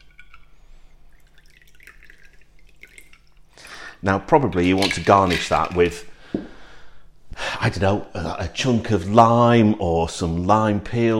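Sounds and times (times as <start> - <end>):
cocktail being poured into a coupe glass: 0.0 - 3.8
speech: 4.0 - 6.5, 7.6 - 11.1.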